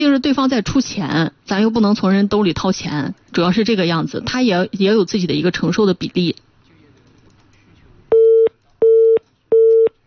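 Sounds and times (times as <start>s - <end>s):
speech: 0.1s - 6.5s
telephone busy tone beeps after a call is hung up: 8.1s - 9.9s.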